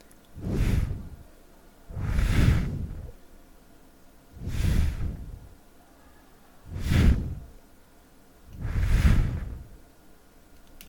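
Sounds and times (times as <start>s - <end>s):
blowing on microphone: 0.4s - 1.3s, 1.9s - 3.2s, 4.4s - 5.6s, 6.6s - 7.6s, 8.5s - 9.8s.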